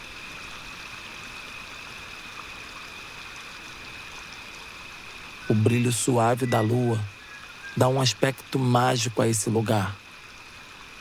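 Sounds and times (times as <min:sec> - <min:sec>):
stream flowing in a forest: 0:00.0 - 0:11.0
faint steady high-pitched drone: 0:05.4 - 0:10.0
speech: 0:05.5 - 0:07.2, 0:07.8 - 0:10.0.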